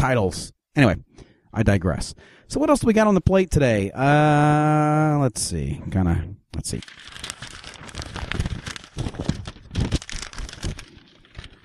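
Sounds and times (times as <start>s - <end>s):
speech: 0.0s - 7.5s
paper being crinkled and shuffled: 6.7s - 11.6s.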